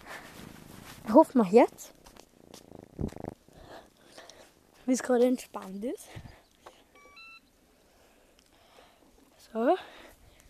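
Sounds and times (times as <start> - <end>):
faint breathy noise: 0.0 - 0.9, 3.0 - 4.8, 7.6 - 10.4
kitten purring: 0.0 - 4.8
speech: 1.1 - 2.0, 4.9 - 6.3, 9.5 - 10.0.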